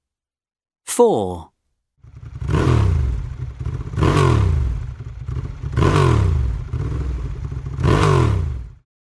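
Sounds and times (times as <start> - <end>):
speech: 1.0 - 1.5
motorbike engine revving: 2.0 - 8.8.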